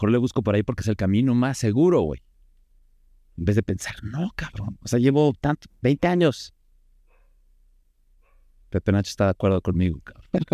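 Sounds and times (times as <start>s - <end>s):
speech: 0.0s - 2.3s, 3.4s - 6.6s, 8.7s - 10.5s
dog barking: 7.0s - 7.4s, 8.2s - 8.6s
laughter: 10.3s - 10.5s.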